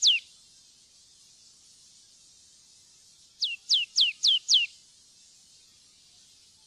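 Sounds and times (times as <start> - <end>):
marsh tit whistled calls: 0.0 - 0.3, 3.4 - 4.8.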